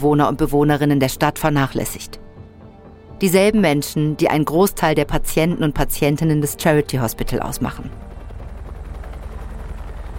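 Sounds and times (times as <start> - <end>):
speech: 0.0 - 2.3, 3.2 - 8.1
helicopter rotor blades chopping: 6.5 - 10.1.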